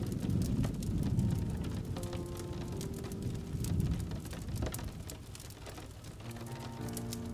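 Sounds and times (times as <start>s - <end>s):
low thunder rumble: 0.0s - 7.3s
steady rain pattering on a surface: 0.0s - 7.3s.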